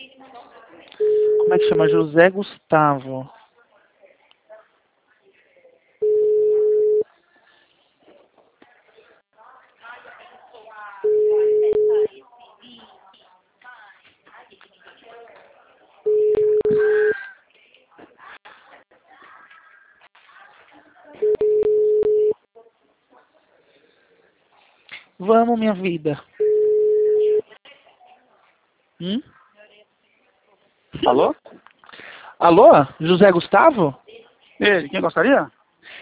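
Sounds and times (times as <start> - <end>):
telephone ringback tone while placing a call: 1.0 - 2.1, 6.0 - 7.0, 11.0 - 12.1, 16.1 - 17.2, 21.2 - 22.4, 26.4 - 27.4
speech: 1.5 - 3.4, 25.2 - 26.4, 29.0 - 29.4, 31.0 - 31.6, 32.4 - 34.0, 34.6 - 35.6.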